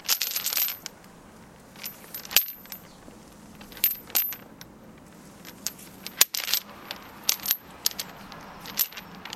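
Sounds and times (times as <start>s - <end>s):
chain rattling: 0.0s - 0.9s, 1.8s - 2.9s, 3.6s - 4.5s, 5.4s - 9.3s.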